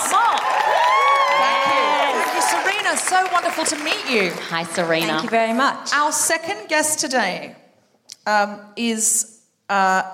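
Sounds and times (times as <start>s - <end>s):
audience cheering and whooping to welcome a guest: 0.0s - 4.2s
speech: 2.9s - 7.6s, 8.2s - 10.1s.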